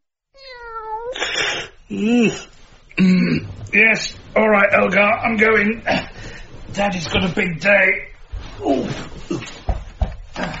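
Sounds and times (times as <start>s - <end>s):
cat meowing: 0.4s - 1.3s
speech: 1.5s - 6.1s, 6.8s - 8.0s.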